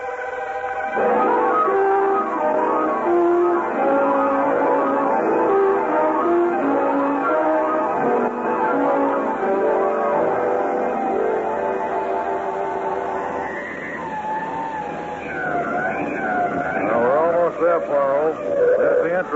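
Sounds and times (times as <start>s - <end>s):
police car siren rising and falling: 0.0s - 19.3s
traffic noise: 0.0s - 19.3s
speech: 1.0s - 1.2s
car engine rumbling: 1.0s - 19.3s.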